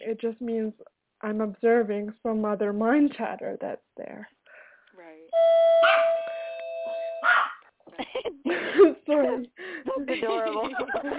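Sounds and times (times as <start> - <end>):
speech: 0.1 - 4.4, 8.0 - 11.1
steady ringing electronic tone: 5.3 - 7.3
dog barking: 5.8 - 6.2, 7.2 - 7.6
laughter: 7.9 - 11.1.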